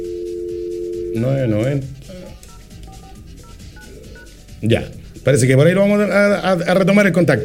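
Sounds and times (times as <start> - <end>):
telephone line tone while redialing a call: 0.0 - 1.2
speech: 1.2 - 2.2, 4.6 - 7.4.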